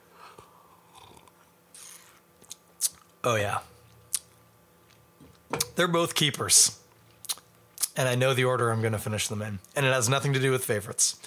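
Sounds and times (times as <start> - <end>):
sipping beer with slurping and swallowing: 0.8 - 3.1
speech: 3.2 - 3.7, 5.8 - 6.8, 8.0 - 11.2.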